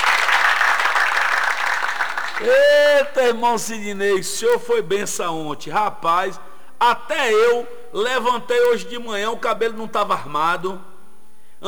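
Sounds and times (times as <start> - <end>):
group applause: 0.0 - 2.7
speech: 2.4 - 10.9.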